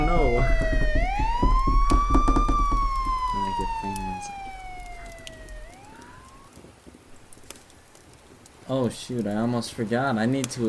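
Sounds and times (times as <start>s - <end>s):
emergency vehicle siren wailing: 0.0s - 6.6s
speech: 8.9s - 10.6s.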